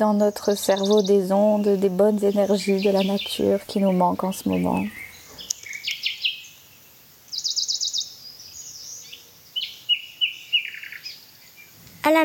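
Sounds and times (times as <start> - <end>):
speech: 0.0 - 5.0
faint steady forest background: 0.0 - 12.2
forest birds chirping and trilling: 0.0 - 12.2.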